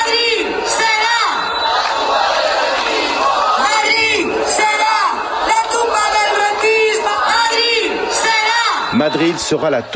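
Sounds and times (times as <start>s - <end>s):
large crowd of protesters in Madrid chanting a slogan at full voice: 0.0s - 9.6s
speech: 9.0s - 9.9s.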